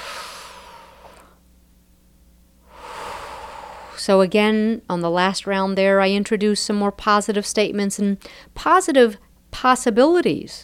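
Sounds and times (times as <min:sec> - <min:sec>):
slow deep breathing: 0:00.0 - 0:01.4, 0:02.6 - 0:04.1
speech: 0:04.0 - 0:10.6.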